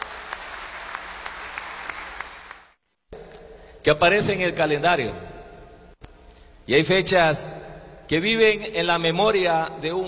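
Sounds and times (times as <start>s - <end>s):
crowd applauding at a town founding anniversary ceremony: 0.0s - 2.8s
speech: 3.8s - 5.3s, 6.7s - 10.0s.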